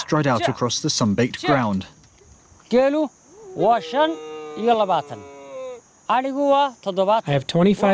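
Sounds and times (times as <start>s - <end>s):
speech: 0.1s - 2.0s, 2.7s - 5.3s, 6.1s - 7.9s
high insect buzz: 1.4s - 7.9s
sheep and goats bleating while herded across sun-baked ground: 3.6s - 5.8s.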